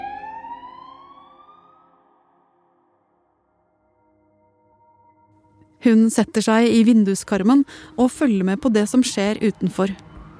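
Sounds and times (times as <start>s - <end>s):
police siren wailing: 0.0s - 2.5s, 8.6s - 10.3s
speech: 5.8s - 10.1s
low rumble of traffic: 5.9s - 10.3s.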